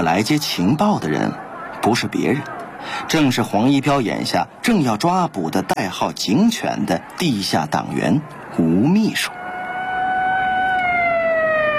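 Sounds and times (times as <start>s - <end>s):
speech: 0.0s - 9.4s
police car siren wailing in the distance: 9.2s - 11.7s.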